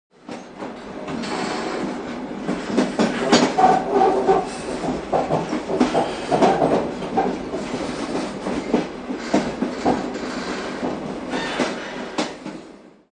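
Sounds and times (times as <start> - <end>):
village train: 0.1 - 13.1.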